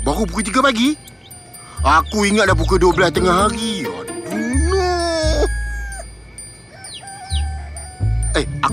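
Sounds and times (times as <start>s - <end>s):
speech: 0.2s - 1.1s, 1.9s - 3.9s, 8.4s - 8.7s
chicken crowing: 3.5s - 6.1s, 6.7s - 8.3s.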